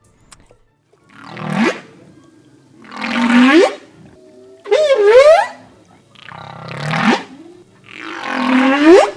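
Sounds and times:
humpback whale mothers calling to their calves in the ocean off Turks and Caicos: 2.8 - 9.1.

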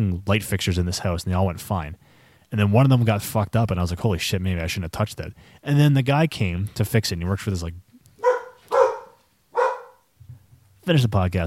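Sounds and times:
speech: 0.0 - 7.8, 10.9 - 11.4
dog barking: 8.2 - 10.1.

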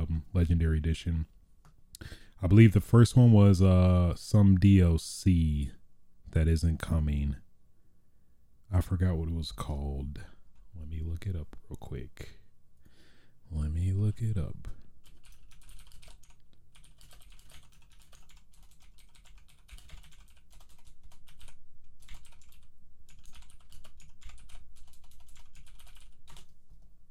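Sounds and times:
speech: 0.4 - 1.4, 2.0 - 7.4, 8.7 - 12.4, 13.5 - 14.8
fast typing on a computer keyboard: 15.0 - 26.6.

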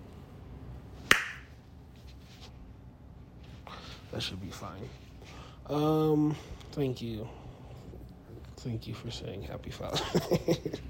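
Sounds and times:
hand clap: 1.1 - 1.5
soft rustles: 1.6 - 5.4
speech: 4.1 - 5.1, 5.7 - 7.4, 8.6 - 10.8
laughter: 9.9 - 10.8.

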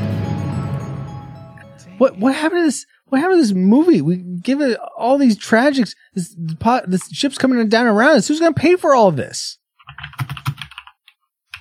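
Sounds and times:
speech: 2.0 - 10.3
typing on a computer keyboard: 9.8 - 11.6.

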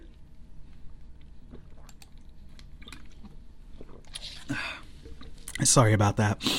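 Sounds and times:
someone sipping and swallowing a thick veggie powder drink: 0.0 - 5.6
speech: 5.6 - 6.5.

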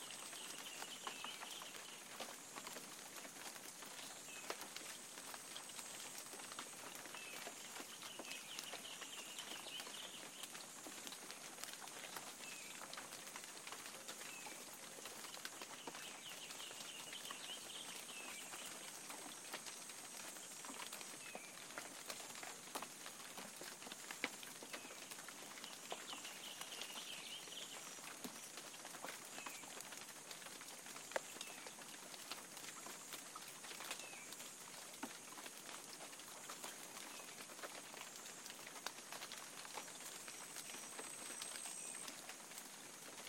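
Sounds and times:
spring morning rain downpour: 0.0 - 43.2.

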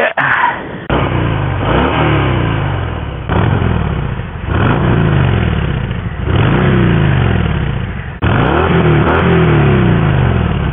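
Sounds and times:
motorcycle engine revving through exhaust: 0.8 - 10.7.

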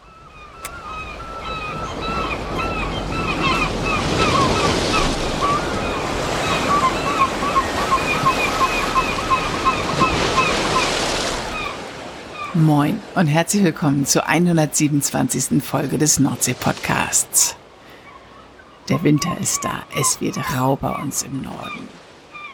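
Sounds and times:
heavy sea waves crashing and roaring: 0.0 - 22.5
speech: 12.7 - 17.6, 18.9 - 22.0.

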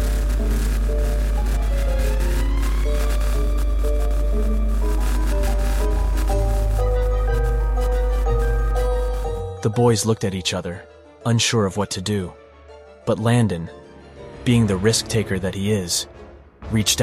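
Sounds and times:
eerie electronic hum from glowing object: 0.0 - 9.7
speech: 9.6 - 12.4, 13.0 - 13.8, 14.4 - 17.0.

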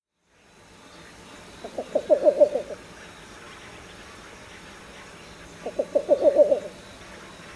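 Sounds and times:
male Least Bittern cooing in a wetland: 1.8 - 2.8, 5.7 - 6.7.

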